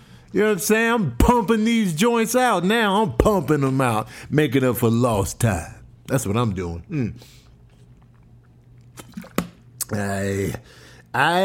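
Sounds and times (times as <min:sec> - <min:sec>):
speech: 0:00.3 - 0:07.4, 0:09.9 - 0:11.4
sips of water from a bottle: 0:07.2 - 0:09.9.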